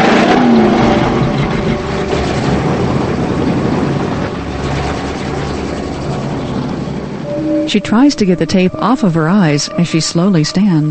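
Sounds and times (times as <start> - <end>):
car tires grinding over gravel: 0.0 - 7.2
blue car engine rumbling loudly while backing away: 0.0 - 10.8
speech: 7.7 - 10.8.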